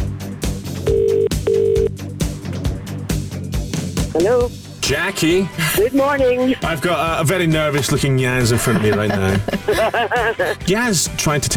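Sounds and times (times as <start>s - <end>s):
upbeat music bed with a thumping beat: 0.0s - 11.5s
telephone call ringing out on the line: 0.9s - 1.9s
speech: 4.2s - 11.5s
laughter: 5.3s - 11.5s.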